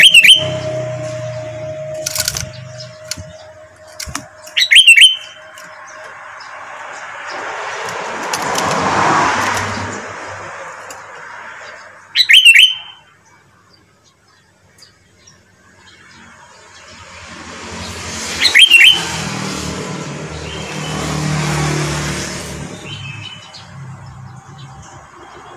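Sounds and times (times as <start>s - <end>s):
sooty-headed bulbul whistled notes: 0.0s - 5.7s
vehicle rumbling past: 0.0s - 12.2s, 15.6s - 25.5s.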